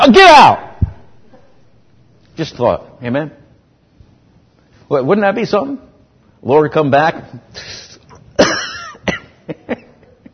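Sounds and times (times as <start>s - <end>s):
speech: 0.0s - 0.7s, 2.4s - 3.4s, 4.9s - 7.9s
person imitating a smoker's cough during a sermon: 8.4s - 9.4s.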